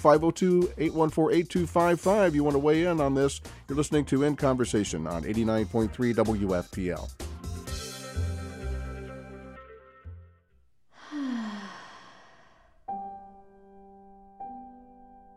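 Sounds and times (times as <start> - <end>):
speech: 0.0 - 7.3
deep breath let out as a soft sigh: 10.9 - 12.9.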